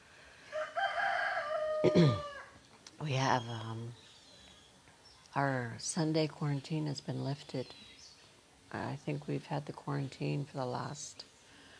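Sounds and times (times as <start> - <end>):
rooster crowing outside in a residential neighborhood in the morning: 0.4 - 2.6
speech: 1.8 - 2.3, 3.0 - 4.0, 5.3 - 7.9, 8.7 - 11.3.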